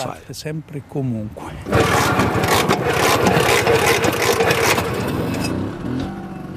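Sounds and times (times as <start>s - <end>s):
restored 1951 two-stroke scooter kick-started: 1.7s - 6.4s.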